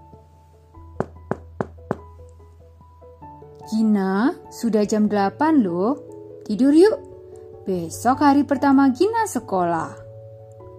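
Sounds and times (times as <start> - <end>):
soft melody: 0.0 - 10.7
knocking on a wooden bedroom door at night: 1.0 - 2.2
speech: 3.6 - 7.1, 7.7 - 10.0.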